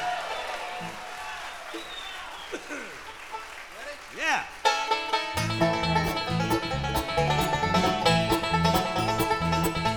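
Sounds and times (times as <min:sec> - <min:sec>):
crowd cheering and whooping: 0:00.0 - 0:02.8
crowd applause: 0:00.0 - 0:09.9.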